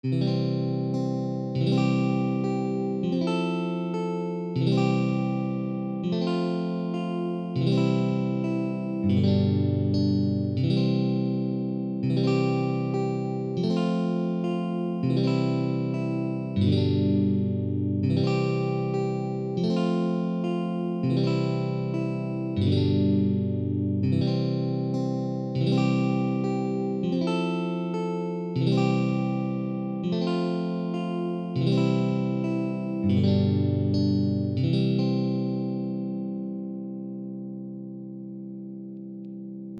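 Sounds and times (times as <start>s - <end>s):
simple guitar melody: 0.0s - 39.7s.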